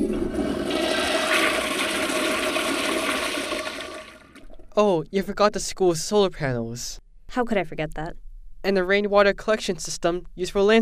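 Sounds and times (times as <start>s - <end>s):
water-saving school toilet flushing: 0.0s - 4.6s
speech: 4.8s - 10.7s.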